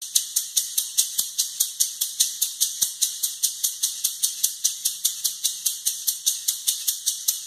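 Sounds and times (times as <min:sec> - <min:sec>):
maracas shaking: 0:00.0 - 0:07.4.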